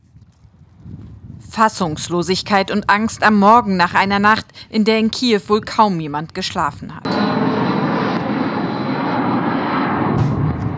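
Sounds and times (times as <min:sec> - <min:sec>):
speech: 0:01.6 - 0:07.2
Shahed attack drone engine flying overhead during Russian attack on Kyiv: 0:07.0 - 0:10.7.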